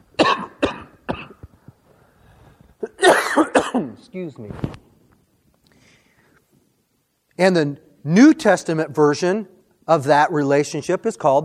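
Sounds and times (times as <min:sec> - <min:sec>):
person coughing: 0:00.2 - 0:01.4, 0:02.8 - 0:04.0
faint breathing: 0:01.6 - 0:02.8, 0:05.6 - 0:06.5
speech: 0:03.8 - 0:04.8, 0:07.4 - 0:11.4.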